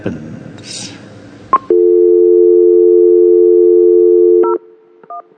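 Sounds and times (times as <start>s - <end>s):
telephone dial tone: 1.6s - 5.2s.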